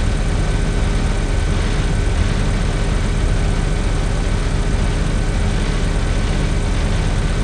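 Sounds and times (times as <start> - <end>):
generator running: 0.0 - 7.4.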